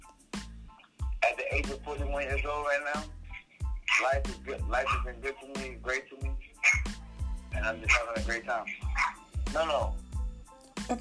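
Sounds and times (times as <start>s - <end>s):
speech: 1.4s - 3.2s, 4.0s - 6.8s, 7.6s - 8.8s, 9.5s - 10.0s, 10.9s - 11.0s
small Yorkie dog barking: 3.9s - 4.2s, 6.6s - 6.9s, 8.7s - 9.2s.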